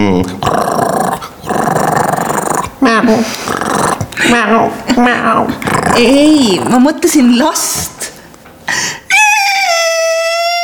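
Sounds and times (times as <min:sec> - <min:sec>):
dog growling: 0:00.0 - 0:04.3, 0:05.1 - 0:06.9
speech: 0:06.0 - 0:07.9
voices or yelps: 0:09.1 - 0:10.6.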